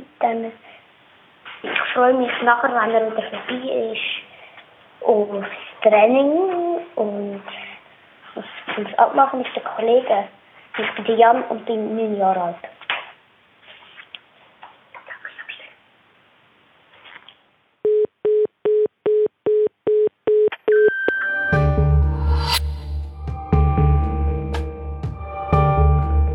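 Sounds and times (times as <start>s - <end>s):
speech: 0.2s - 0.7s, 1.6s - 4.2s, 5.0s - 7.7s, 8.4s - 12.8s
short electronic answering machine beeps: 17.9s - 21.4s
music: 20.9s - 26.3s.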